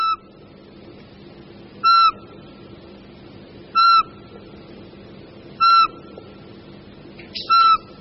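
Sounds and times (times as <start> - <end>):
Eurasian pygmy owl whistling call: 0.0 - 0.2, 1.8 - 2.3, 3.7 - 4.2, 5.6 - 6.1, 7.2 - 8.0
low rumble: 0.0 - 8.0.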